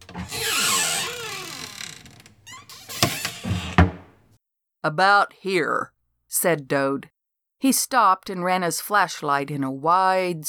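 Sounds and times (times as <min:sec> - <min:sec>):
thin squeaks of swinging shutters: 0:00.0 - 0:04.0
wooden house shutters creaking and groaning in the wind: 0:00.0 - 0:04.2
speech: 0:04.8 - 0:10.4.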